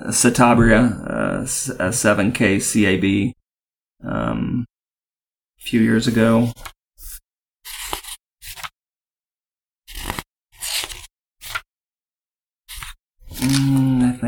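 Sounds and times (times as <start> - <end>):
speech: 0.1 - 3.4, 4.0 - 4.7, 5.6 - 6.8
flipping pages of a paper logbook: 6.1 - 8.8, 9.9 - 11.7, 12.7 - 14.0.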